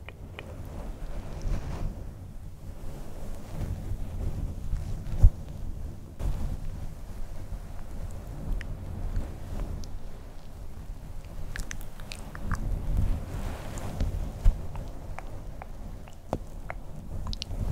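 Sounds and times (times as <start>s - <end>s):
soft fluffy microphone touching and scratching: 0.2s - 10.2s, 12.6s - 17.7s.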